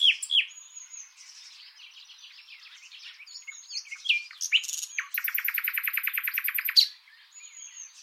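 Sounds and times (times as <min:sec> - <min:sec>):
Common nightingale Luscinia megarhynchos singing: 0:00.0 - 0:08.0.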